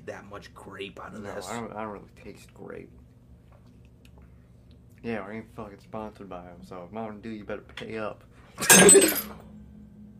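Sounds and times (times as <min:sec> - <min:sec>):
speech: 0:00.1 - 0:03.1, 0:05.0 - 0:09.5
drinking glass shattering: 0:08.6 - 0:09.4.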